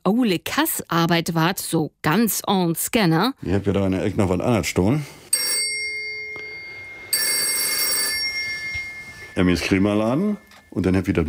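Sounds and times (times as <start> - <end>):
speech: 0.0 - 5.5, 9.4 - 11.2
old telephone bell ringing: 5.3 - 11.2
faint steady tone: 5.6 - 11.2.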